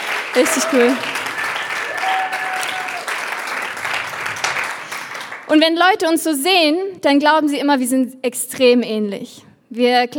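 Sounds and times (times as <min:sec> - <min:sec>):
audience applause: 0:00.0 - 0:05.5
speech: 0:00.4 - 0:01.2, 0:05.5 - 0:10.1.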